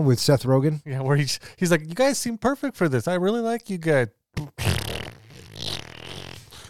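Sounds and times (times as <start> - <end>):
speech: 0.0 - 4.7
loud sputtering fart: 4.4 - 6.6.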